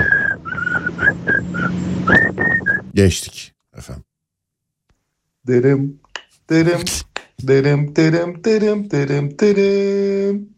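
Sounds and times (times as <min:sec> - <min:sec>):
whistled song melody: 0:00.0 - 0:02.9
speech: 0:03.0 - 0:03.9, 0:05.5 - 0:10.5.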